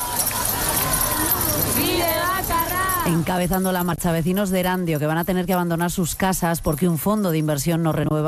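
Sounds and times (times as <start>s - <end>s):
crowd voices and shouting at a housing protest march: 0.0s - 3.5s
many sets of keys jangling at a housing protest march: 0.0s - 8.2s
speech: 2.0s - 8.2s.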